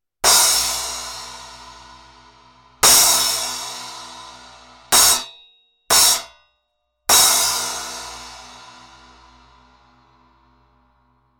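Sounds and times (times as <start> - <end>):
12-inch Istanbul Mehmet Sultan splash cymbal: 0.3 - 5.3, 7.1 - 10.6.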